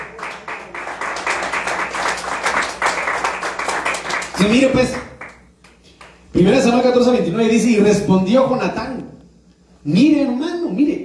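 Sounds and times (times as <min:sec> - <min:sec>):
crowd applause: 0:00.0 - 0:05.4
speech: 0:04.4 - 0:05.1, 0:06.4 - 0:09.1, 0:09.8 - 0:11.0.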